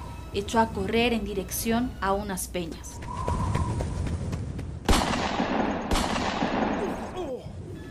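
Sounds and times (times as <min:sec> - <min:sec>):
constant rumbling noise: 0:00.0 - 0:07.8
speech: 0:00.4 - 0:03.4
loud gunshots with decay: 0:04.8 - 0:07.2.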